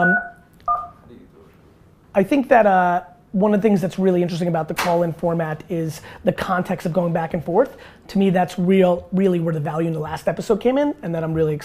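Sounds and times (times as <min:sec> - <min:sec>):
speech: 0:00.0 - 0:00.3, 0:02.2 - 0:11.6
touch-tone keypad beeps from a phone being dialed: 0:00.0 - 0:01.0.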